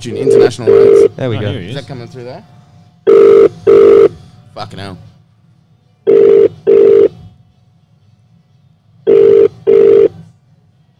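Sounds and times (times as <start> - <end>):
speech: 0.0 - 2.6, 4.6 - 5.1
phone ringback tone over a speaker: 0.2 - 1.1, 3.1 - 4.1, 6.1 - 7.1, 9.1 - 10.2.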